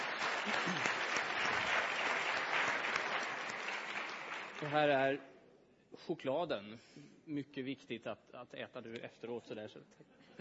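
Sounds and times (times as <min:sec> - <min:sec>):
audience clapping: 0:00.0 - 0:05.0
speech: 0:04.6 - 0:05.3, 0:05.9 - 0:10.3.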